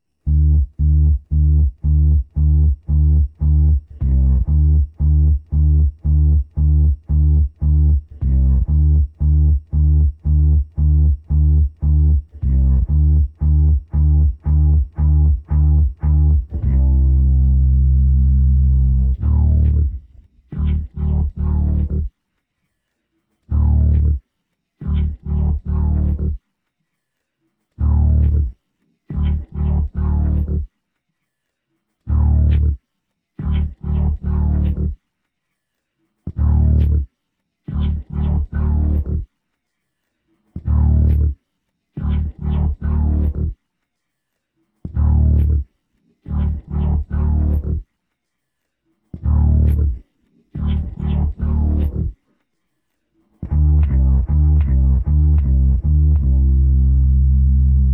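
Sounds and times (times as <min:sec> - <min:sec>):
rock bass: 0:00.3 - 0:22.1, 0:23.5 - 0:24.2, 0:24.8 - 0:26.4, 0:27.8 - 0:28.5, 0:29.1 - 0:30.7, 0:32.1 - 0:32.8, 0:33.4 - 0:35.0, 0:36.3 - 0:37.1, 0:37.7 - 0:39.2, 0:40.6 - 0:41.3, 0:42.0 - 0:43.6, 0:44.9 - 0:45.6, 0:46.3 - 0:47.8, 0:49.2 - 0:50.0, 0:50.6 - 0:52.2, 0:53.4 - 0:57.9.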